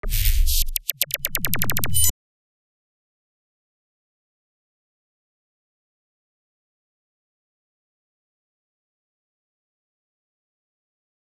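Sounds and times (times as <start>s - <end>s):
electronic artifact sound: 0.0s - 2.1s.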